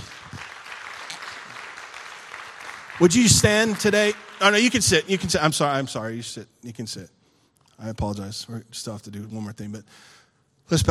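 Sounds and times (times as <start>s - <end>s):
large crowd applauding in a big room: 0.0s - 6.2s
speech: 3.0s - 7.2s, 7.8s - 10.8s.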